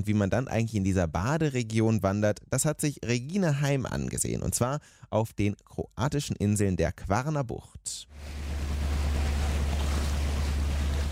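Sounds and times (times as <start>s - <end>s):
speech: 0.0s - 8.6s
water rushing past: 8.1s - 11.1s
small motor sailer engine chugging among the Croatian islands of the Kvarner Bay: 8.2s - 11.1s.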